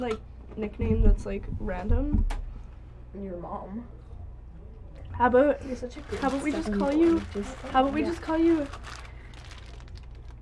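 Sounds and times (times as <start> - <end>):
speech: 0.0 - 2.4, 3.1 - 4.0, 5.2 - 9.0
paper wrapper of a sausage roll crinkling while being eaten: 5.8 - 10.3.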